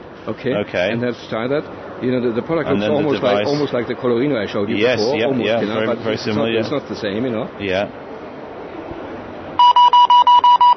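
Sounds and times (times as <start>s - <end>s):
speech: 0.2s - 8.0s
label reader giving short electronic beeps: 9.6s - 10.7s.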